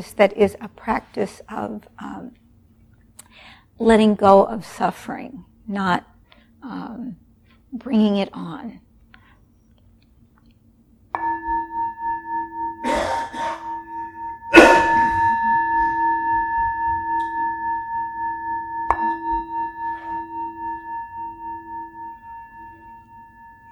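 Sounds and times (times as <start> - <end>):
speech: 0.0 - 2.4, 3.8 - 8.8
meditation bell struck and ringing: 11.1 - 23.6.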